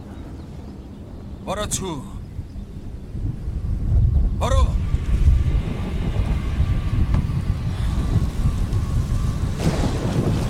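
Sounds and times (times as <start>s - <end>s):
rushing rain of an approaching thunderstorm: 0.0s - 10.4s
wind of an approaching thunderstorm: 0.0s - 10.4s
speech: 1.5s - 2.2s
low rumbling of an approaching thunderstorm: 2.2s - 10.4s.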